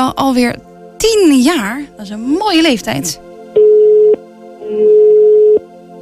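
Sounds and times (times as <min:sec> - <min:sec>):
speech: 0:00.0 - 0:03.3
ringing tone of an unanswered outgoing phone call: 0:03.6 - 0:05.6.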